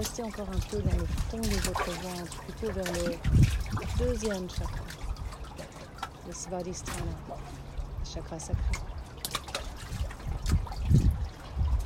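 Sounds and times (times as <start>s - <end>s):
speech: 0.0s - 5.1s, 6.3s - 8.9s
gentle waves lapping and trickling: 0.0s - 11.8s.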